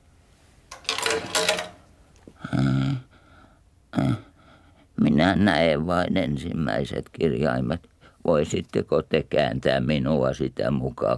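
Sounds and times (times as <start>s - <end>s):
coin dropping into a coin-operated telescope: 0.7s - 1.9s
speech: 1.1s - 1.6s, 5.0s - 11.1s.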